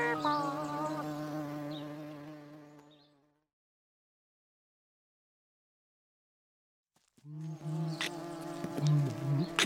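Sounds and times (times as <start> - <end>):
bees buzzing: 0.0 - 3.4, 7.3 - 9.6.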